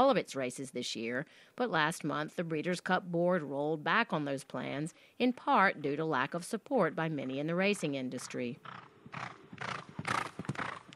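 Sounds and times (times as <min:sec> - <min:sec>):
speech: 0:00.0 - 0:09.9
horse hooves on a morning training run: 0:08.2 - 0:10.9.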